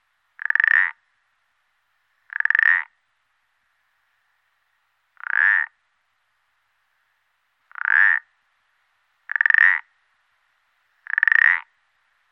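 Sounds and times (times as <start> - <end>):
common parsley frog croaking: 0.4 - 1.0, 2.3 - 3.0, 5.2 - 5.8, 7.7 - 8.3, 9.3 - 9.9, 11.0 - 11.7.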